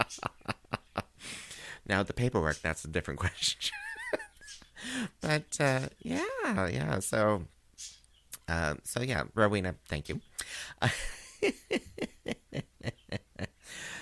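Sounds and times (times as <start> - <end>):
laughter: 0.0 - 1.1, 3.6 - 4.5, 10.8 - 13.6
speech: 0.1 - 0.3, 1.9 - 3.8, 5.3 - 7.6, 8.5 - 11.1
budgies chirping in the next room behind a curtain: 2.4 - 10.6.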